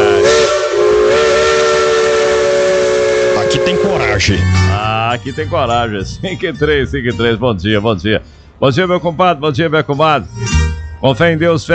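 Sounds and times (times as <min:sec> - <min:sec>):
steam locomotive whistle: 0:00.0 - 0:05.6
speech: 0:03.7 - 0:11.7.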